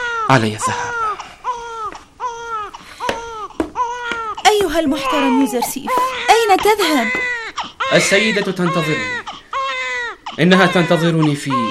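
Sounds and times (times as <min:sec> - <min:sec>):
child crying in wailing bursts: 0:00.0 - 0:11.7
speech: 0:00.3 - 0:01.0, 0:04.7 - 0:07.3, 0:07.9 - 0:09.2, 0:10.4 - 0:11.7.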